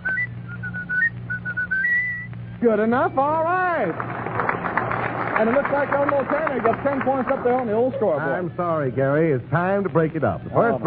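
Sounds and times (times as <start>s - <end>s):
person whistling a melody: 0.0s - 2.3s
speech: 2.6s - 4.3s, 5.4s - 10.8s.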